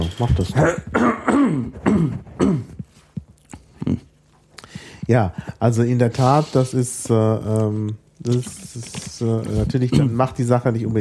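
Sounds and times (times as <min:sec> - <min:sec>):
speech: 0:00.2 - 0:02.7, 0:05.1 - 0:10.9
person clearing throat: 0:00.5 - 0:02.9, 0:03.7 - 0:04.1, 0:09.9 - 0:10.2.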